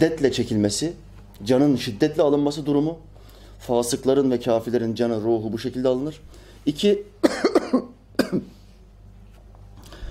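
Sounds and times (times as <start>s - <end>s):
speech: 0.0s - 8.6s
ill person coughing: 7.2s - 8.6s.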